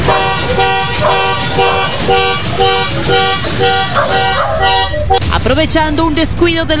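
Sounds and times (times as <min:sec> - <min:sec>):
dog barking: 0:00.0 - 0:05.2
car horn honking: 0:00.0 - 0:05.4
speech: 0:05.4 - 0:06.7.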